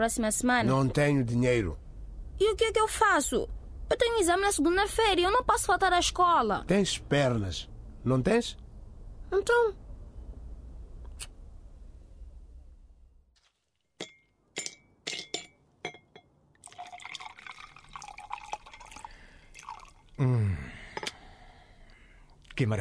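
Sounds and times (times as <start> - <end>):
speech: 0.0 - 1.8, 2.4 - 8.6, 9.3 - 9.8, 22.6 - 22.7
low room hum: 0.0 - 13.4, 14.0 - 22.7
ice cubes clinking into a whisky glass: 16.6 - 20.0
liquid pouring over ice with a rising gurgle: 16.6 - 20.2.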